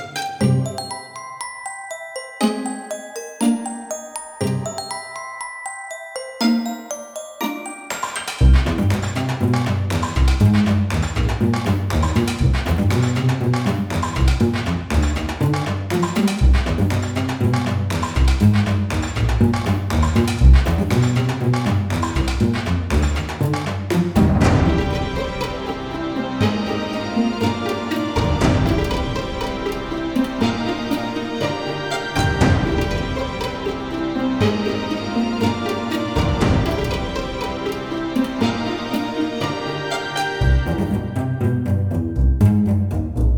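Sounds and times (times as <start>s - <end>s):
music loop: 0.4s - 43.2s.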